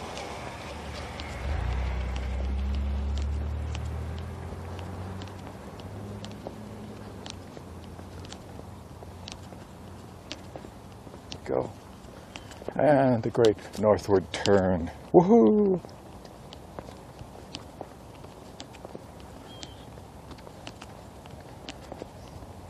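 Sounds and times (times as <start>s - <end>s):
car driving past: 0.0s - 7.4s
speech: 11.5s - 11.8s, 12.8s - 16.0s.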